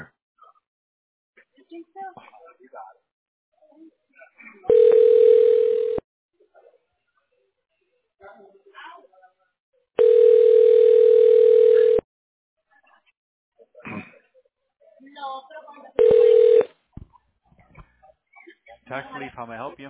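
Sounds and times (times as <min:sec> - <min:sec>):
telephone dial tone and dialing: 0:04.7 - 0:06.0, 0:10.0 - 0:12.0, 0:16.0 - 0:16.7
speech: 0:18.7 - 0:19.8.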